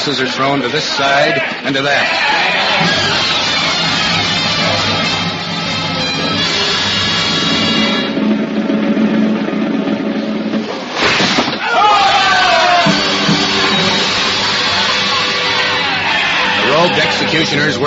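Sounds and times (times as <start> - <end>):
speech: 0.0 - 3.9, 16.7 - 17.8
large mob screaming and shouting in a street at executions: 0.8 - 8.2, 11.6 - 17.8
sharp burst of noise: 2.6 - 17.8.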